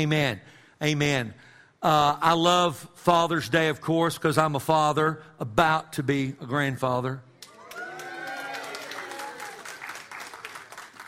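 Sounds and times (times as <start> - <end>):
speech: 0.0 - 7.3
congregation clapping: 7.4 - 11.0
scattered voices and cheers in the crowd: 7.5 - 9.8.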